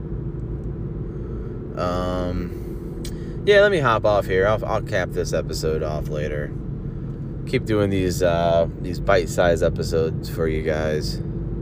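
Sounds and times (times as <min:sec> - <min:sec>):
road and engine drone inside a moving car: 0:00.0 - 0:11.6
speech: 0:01.8 - 0:06.6, 0:07.4 - 0:11.3.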